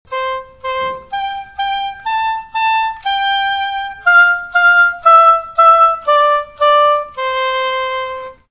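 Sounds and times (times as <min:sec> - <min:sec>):
oboe twinkle: 0:00.1 - 0:08.4.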